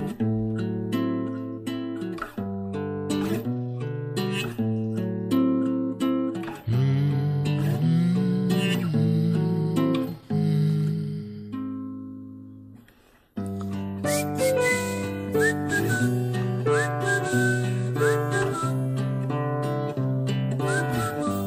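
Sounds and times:
full sustained instrumental backing music: 0.0 - 21.4
person whistling a melody with short upward-sliding notes: 6.7 - 11.7, 13.7 - 21.4.

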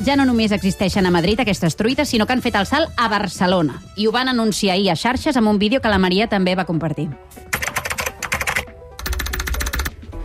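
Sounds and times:
speech: 0.0 - 7.5
rapid computer keyboard typing: 7.5 - 10.0.

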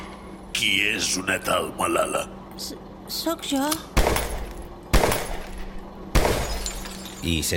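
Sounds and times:
speech: 0.6 - 4.2, 7.2 - 7.5
sharp loud gunshots with decay: 3.9 - 6.7.

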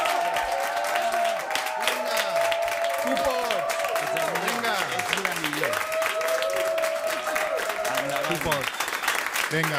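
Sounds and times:
crowd applauding: 0.0 - 9.7
speech: 8.4 - 8.8, 9.5 - 9.7.

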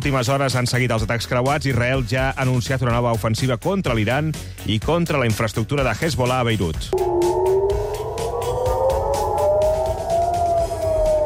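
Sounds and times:
speech: 0.0 - 7.4
air raid siren wailing to warn of incoming projectiles: 7.0 - 11.2
rumbling gusty background: 7.0 - 11.2.

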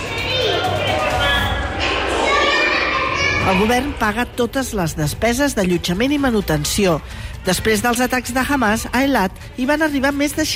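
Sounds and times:
children playing in a luxury hotel lobby: 0.0 - 3.7
speech: 3.5 - 10.5.

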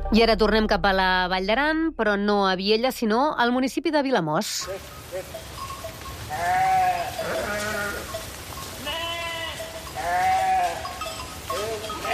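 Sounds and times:
speech: 0.1 - 5.5
outdoor noise: 2.3 - 12.1
village flock of sheep and goats bleating in the Val d'Aran: 4.6 - 12.1.

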